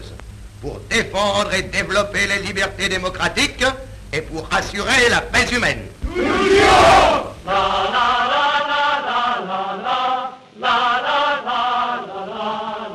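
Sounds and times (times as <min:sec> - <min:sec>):
speech: 0:00.6 - 0:08.2
loud burst of crowd noise: 0:06.0 - 0:08.0
large group of demonstrators chanting a short slogan in unison: 0:06.1 - 0:12.9.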